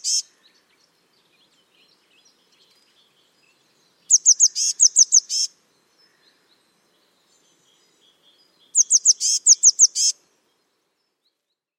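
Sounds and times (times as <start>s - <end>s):
Eurasian blue tit calling: 0.0s - 0.4s, 4.1s - 6.2s, 8.7s - 10.2s.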